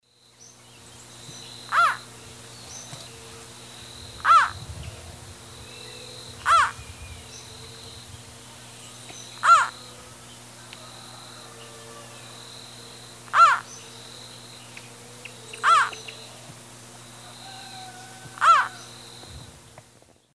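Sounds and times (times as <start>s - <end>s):
male Thamnophilus doliatus calling in the Eastern Lowlands of South America: 1.7s - 2.1s, 4.1s - 4.7s, 5.6s - 7.8s, 9.0s - 12.2s, 13.2s - 14.0s, 15.1s - 16.5s, 17.1s - 19.0s.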